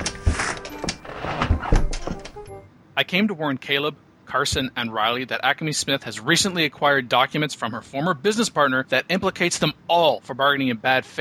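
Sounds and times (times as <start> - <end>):
door latch and hinge rattling: 0.0 - 2.6
dull thuds: 0.0 - 2.6
door being opened: 0.0 - 2.7
speech: 3.0 - 11.1.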